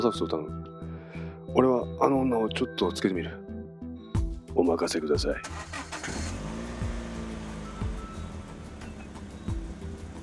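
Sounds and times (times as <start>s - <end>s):
speech: 0.0s - 0.7s, 1.5s - 3.4s, 4.5s - 6.3s
car engine cranking, starting and idling with revs: 5.4s - 10.2s.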